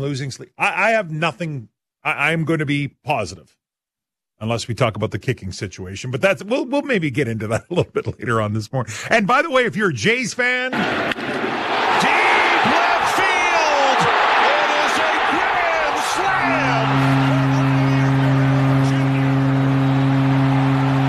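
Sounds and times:
speech: 0.0s - 3.6s, 4.4s - 12.1s
stadium crowd roaring: 10.7s - 21.0s
steady sustained horn-like tone: 14.0s - 21.0s.

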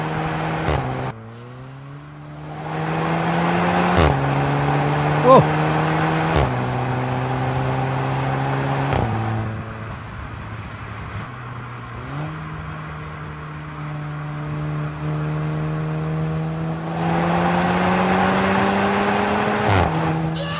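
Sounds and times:
hot hatchback engine revving hard through gear shifts: 0.0s - 9.7s, 13.8s - 20.5s.

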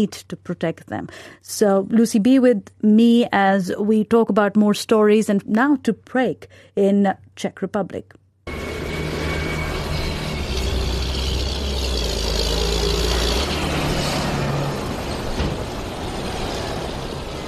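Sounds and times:
speech: 0.0s - 8.2s
city centre traffic noise: 8.5s - 17.4s
heavy diesel engines of protesting farmers' tractors in Prague: 8.5s - 17.4s.

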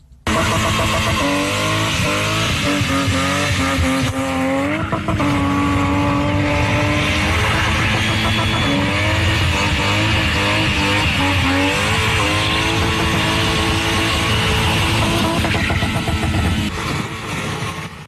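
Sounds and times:
spinning car engine revving hard: 0.2s - 18.0s
spinning car tires squealing: 0.3s - 18.0s.

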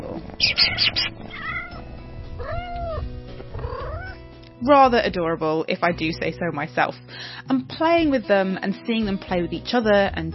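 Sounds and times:
faint low rumble: 0.0s - 4.2s
kitten meowing with thin high-pitched cries: 0.4s - 4.2s
speech: 4.6s - 10.3s.

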